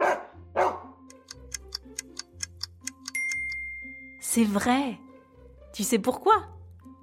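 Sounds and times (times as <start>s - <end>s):
dog barking: 0.0s - 0.9s
soft tonal music: 0.0s - 7.0s
steady ticking rhythm: 1.1s - 3.6s
speech: 4.4s - 5.0s, 5.8s - 6.6s.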